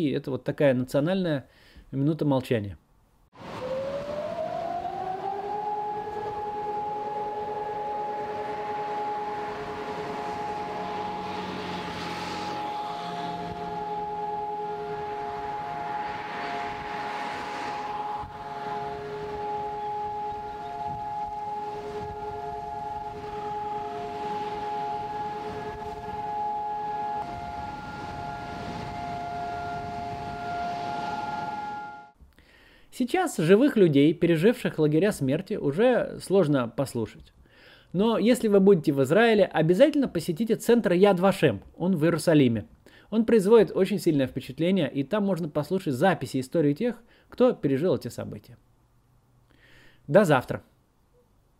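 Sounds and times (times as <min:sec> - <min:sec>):
speech: 0:00.0 - 0:02.8, 0:33.0 - 0:48.7, 0:50.1 - 0:50.7
faint noise: 0:00.0 - 0:04.1, 0:05.4 - 0:51.5
civil defense siren wailing: 0:03.4 - 0:32.2.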